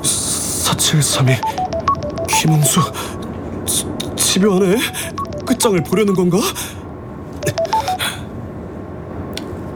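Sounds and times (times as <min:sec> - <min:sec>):
speech: 0:00.8 - 0:01.6, 0:02.4 - 0:06.8
incoming phone call ringing with short electronic tones: 0:01.4 - 0:03.1, 0:04.7 - 0:06.4, 0:07.4 - 0:08.2.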